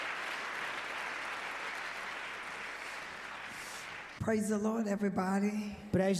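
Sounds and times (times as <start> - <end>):
applause from a large audience: 0.0 - 4.2
speech: 4.2 - 6.1.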